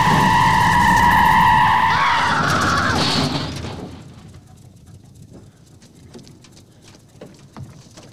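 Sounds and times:
car tires screeching in a skid in traffic: 0:00.0 - 0:03.7.

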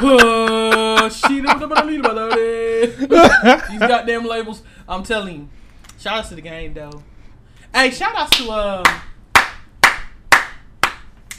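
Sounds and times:
speech: 0:00.0 - 0:00.4, 0:01.3 - 0:07.1, 0:07.7 - 0:09.1
laughter: 0:00.0 - 0:04.2
hand claps from one person giving a round of applause: 0:08.3 - 0:11.3.

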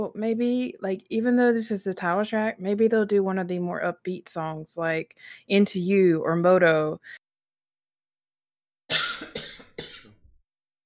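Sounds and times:
speech: 0:00.0 - 0:07.2
dry coughs: 0:08.9 - 0:10.2.

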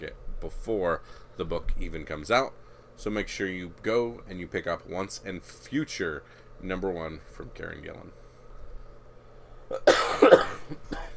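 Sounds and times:
speech: 0:00.0 - 0:08.2, 0:09.7 - 0:11.1
low steady hum: 0:00.0 - 0:11.1
person coughing harshly: 0:09.7 - 0:11.1.

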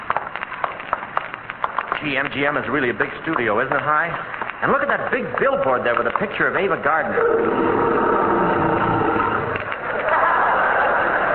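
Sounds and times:
speech: 0:02.0 - 0:08.0
lion roaring: 0:07.1 - 0:09.8
laughter: 0:09.8 - 0:11.3.

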